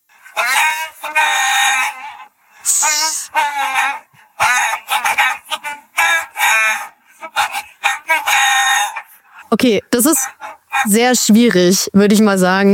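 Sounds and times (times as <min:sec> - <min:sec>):
song melody sung in chicken clucks and squawks for a guess-the-song quiz: 0:00.1 - 0:11.8
speech: 0:09.6 - 0:12.7.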